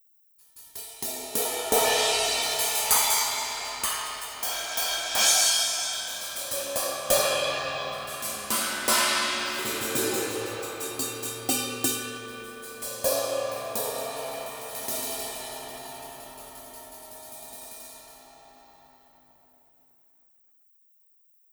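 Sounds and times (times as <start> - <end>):
brushes on various cymbals of acoustic drums: 0.6 - 18.7.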